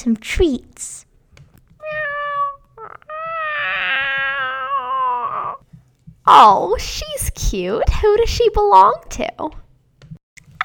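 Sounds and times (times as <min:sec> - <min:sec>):
speech: 0:00.0 - 0:01.1, 0:06.3 - 0:09.6
domestic cat meowing: 0:01.8 - 0:05.6.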